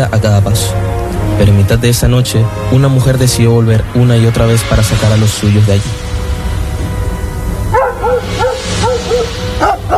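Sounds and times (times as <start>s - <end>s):
speech: 0.0s - 6.1s
low rumbling background: 0.0s - 9.9s
several dogs barking in sharp yips and bow-wows: 7.7s - 9.9s.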